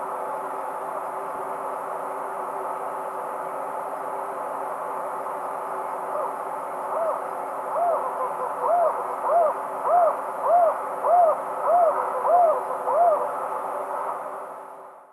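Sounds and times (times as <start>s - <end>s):
tropical screech owl Megascops choliba duet hooting: 6.1s - 14.4s.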